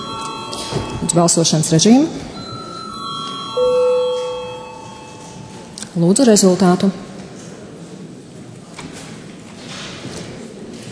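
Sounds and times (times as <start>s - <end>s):
bell ringing in a parliament chamber to call members to a vote: 0.0s - 5.9s
speech: 1.1s - 2.4s, 6.0s - 7.1s.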